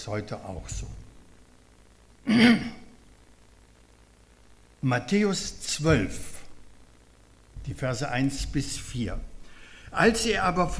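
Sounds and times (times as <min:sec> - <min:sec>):
speech: 0:00.0 - 0:01.0, 0:02.2 - 0:02.8, 0:04.8 - 0:06.3, 0:07.6 - 0:09.3, 0:09.9 - 0:10.7
throat clearing: 0:02.2 - 0:02.9.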